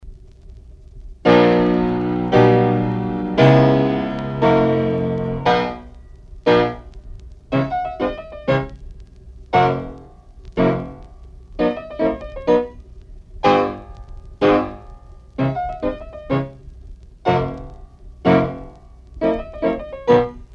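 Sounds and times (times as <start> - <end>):
slow hopping steps: 0.2 - 20.5.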